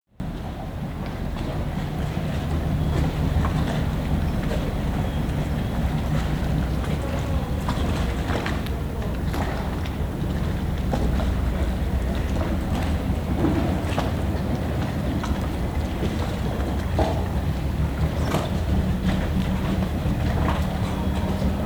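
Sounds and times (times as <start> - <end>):
street ambience at Fondamenta Misericordia: 0.2 - 21.6.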